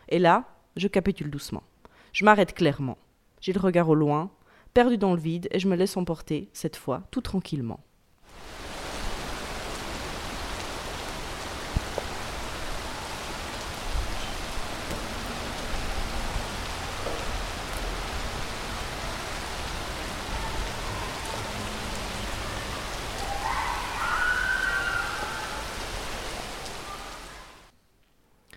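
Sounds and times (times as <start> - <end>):
speech: 0.1 - 8.6
rain falling on a hard balcony surface: 8.2 - 27.7.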